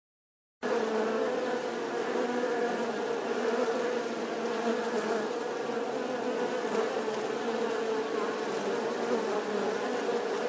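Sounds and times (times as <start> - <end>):
honey bee swarm buzzing outside the hive: 0.6 - 10.4.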